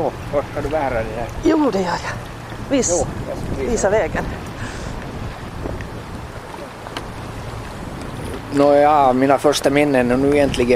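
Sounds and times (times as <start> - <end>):
speech: 0.0 - 4.5, 8.5 - 10.7
faint water lapping: 0.0 - 10.7
wind buffeting the microphone outdoors by a jetty: 0.0 - 10.7.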